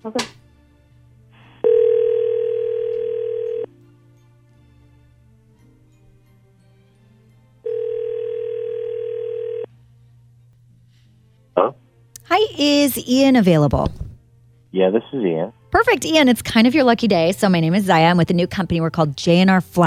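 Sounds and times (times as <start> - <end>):
speech: 0.0 - 0.4, 12.6 - 14.0, 14.8 - 19.8
telephone ringing tone while calling someone: 1.6 - 3.7, 7.6 - 9.7.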